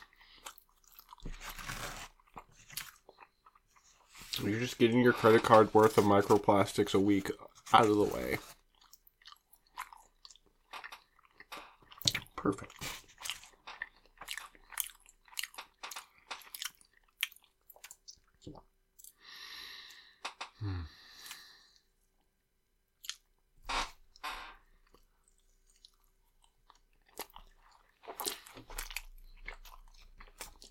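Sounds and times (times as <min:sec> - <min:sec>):
person biting and chewing food at a Mexican restaurant in Polanco: 0:00.0 - 0:06.7, 0:07.5 - 0:19.2, 0:23.0 - 0:30.6
speech: 0:04.4 - 0:08.5, 0:12.5 - 0:12.9
soft breathy sound: 0:19.2 - 0:21.9.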